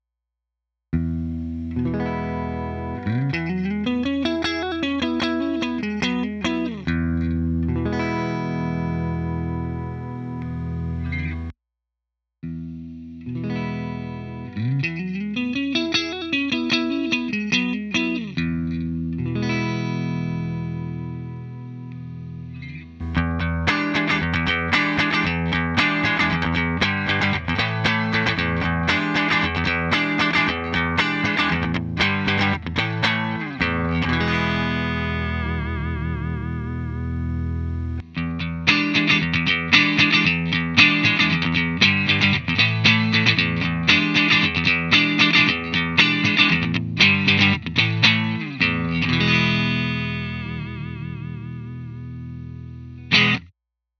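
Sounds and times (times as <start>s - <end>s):
boosted guitar tone: 1.0s - 11.5s, 12.4s - 53.5s.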